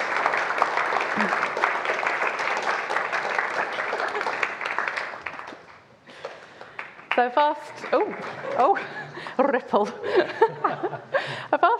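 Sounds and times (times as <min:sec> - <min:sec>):
audience applause: 0:00.0 - 0:09.2
laughter: 0:01.1 - 0:01.6, 0:08.0 - 0:11.7
speech: 0:07.2 - 0:11.6.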